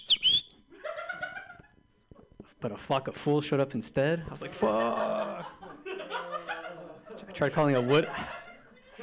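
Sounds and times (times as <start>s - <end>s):
person whistling an imitation of a bird call in a park: 0.0s - 0.5s
laughter: 0.7s - 1.8s, 4.4s - 9.0s
speech: 2.6s - 5.6s, 7.4s - 8.3s.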